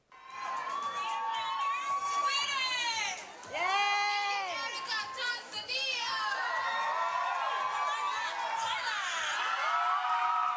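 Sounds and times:
large crowd of supporters cheering and screaming: 0:00.1 - 0:05.4, 0:06.0 - 0:10.5.

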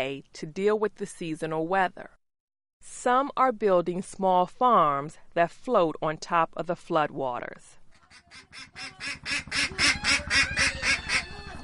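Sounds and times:
speech: 0:00.0 - 0:02.2, 0:02.8 - 0:10.8
ducks quacking: 0:08.1 - 0:11.6.

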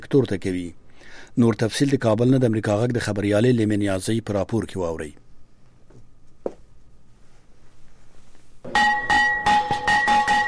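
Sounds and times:
speech: 0:00.1 - 0:05.2
school bell rung at a ceremony opening the new school year: 0:08.7 - 0:10.4.

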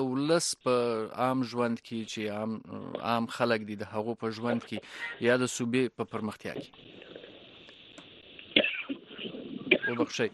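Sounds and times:
speech: 0:00.0 - 0:07.0, 0:09.9 - 0:10.3
cough: 0:08.6 - 0:10.2.

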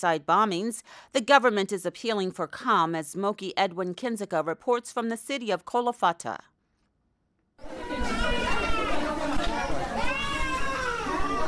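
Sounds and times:
speech: 0:00.0 - 0:06.5
infants crying in crowded mosque shelter: 0:07.6 - 0:11.4
low murmur of people: 0:07.6 - 0:11.4.

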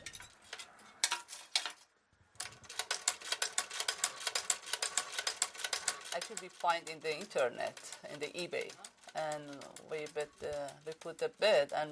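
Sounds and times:
old foot-treadle sewing machine running: 0:02.4 - 0:11.8
person talking: 0:06.1 - 0:11.8.

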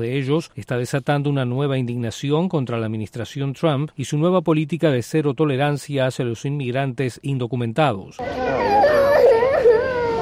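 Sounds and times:
speech: 0:00.0 - 0:08.8
children crying desperately after separation from parents: 0:08.2 - 0:10.2.

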